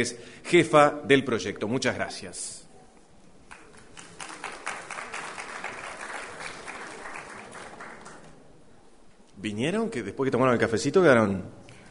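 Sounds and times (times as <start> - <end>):
speech: 0.0 - 2.6, 9.4 - 11.8
audience clapping: 3.4 - 8.4.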